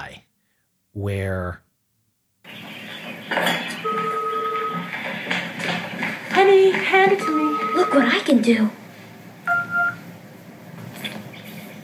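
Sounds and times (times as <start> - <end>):
speech: 1.0 - 1.6, 6.5 - 8.8
telephone keypad tones from a robot's voice: 3.6 - 4.9, 7.2 - 8.2, 9.5 - 10.0.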